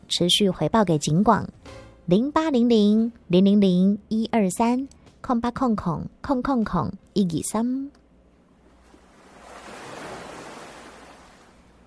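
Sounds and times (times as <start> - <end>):
speech: 0.1 - 8.0
ocean waves crashing: 8.8 - 11.8.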